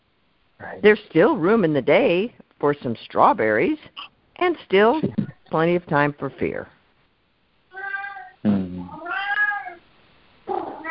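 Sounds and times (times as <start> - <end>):
speech: 0.6 - 6.8, 8.4 - 8.7
cat meowing loudly: 7.7 - 9.8, 10.5 - 10.8.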